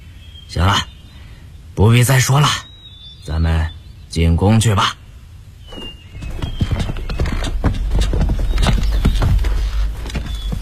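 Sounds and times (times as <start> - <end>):
speech: 1.8 - 2.7, 3.3 - 5.0
horse hooves clip-clopping as a horse is ridden behind a sedan chair: 5.7 - 10.5.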